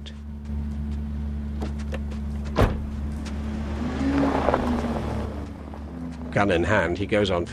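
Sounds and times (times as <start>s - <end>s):
car engine idling and pulling away down an alley: 0.0s - 7.5s
brief thump: 2.5s - 3.0s
speech: 6.3s - 7.5s.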